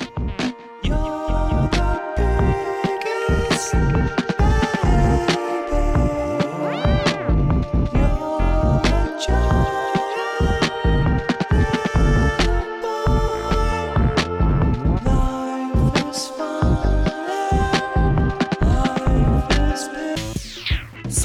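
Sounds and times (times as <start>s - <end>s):
eerie psychedelic lullaby-like song: 0.0s - 21.1s
sweeping effect: 0.0s - 21.1s.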